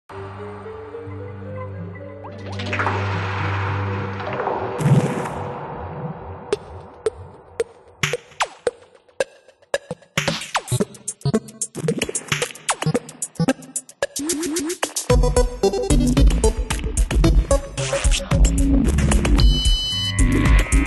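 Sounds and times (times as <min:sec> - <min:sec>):
music: 0:00.1 - 0:04.8, 0:08.0 - 0:20.8
ocean at night: 0:02.0 - 0:07.9.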